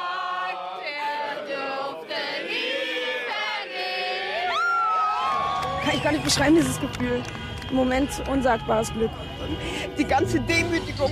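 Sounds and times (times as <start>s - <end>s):
large crowd cheering and whooping: 0.0s - 11.1s
applause: 5.2s - 8.4s
speech: 5.8s - 11.1s.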